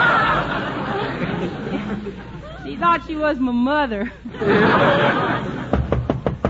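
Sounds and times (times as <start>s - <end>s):
audience laughter: 0.0s - 2.6s, 4.0s - 6.1s
speech: 2.8s - 5.5s
sharp knocks on a door: 5.7s - 6.4s.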